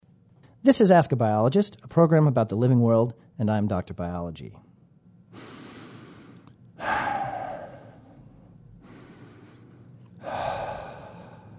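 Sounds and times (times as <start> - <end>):
speech: 0.6 - 4.7
slow heavy breathing in and out: 5.3 - 11.5.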